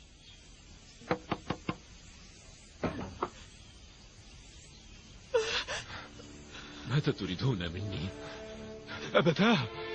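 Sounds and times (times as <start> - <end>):
knocking on a wooden door: 1.0 - 1.8
speech: 7.0 - 8.4, 9.1 - 9.8.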